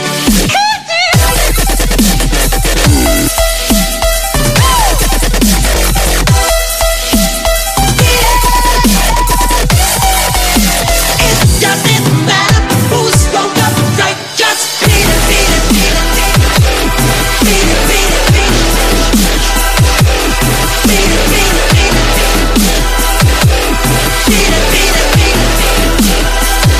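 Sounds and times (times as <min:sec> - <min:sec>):
dubstep beat ringtone: 0:00.1 - 0:26.7.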